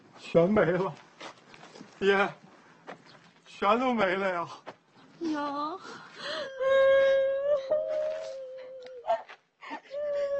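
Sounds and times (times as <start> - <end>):
speech: 0.3 - 1.0, 2.0 - 2.4, 3.6 - 4.6, 5.2 - 7.9
woman crying and wailing: 5.2 - 10.3
woman sobbing: 5.2 - 10.3.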